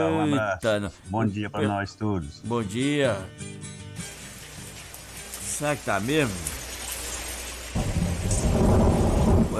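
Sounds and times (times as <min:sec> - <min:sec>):
speech: 0:00.0 - 0:03.8, 0:05.6 - 0:06.6
loud steady rain with deep rumbling undertone: 0:04.5 - 0:09.5.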